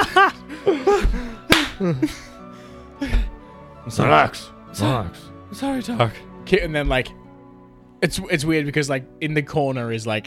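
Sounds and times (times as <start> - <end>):
laughter: 0.0 - 2.4
sharp slap: 1.0 - 1.8
speech: 1.8 - 2.3, 3.9 - 7.2, 8.0 - 10.2.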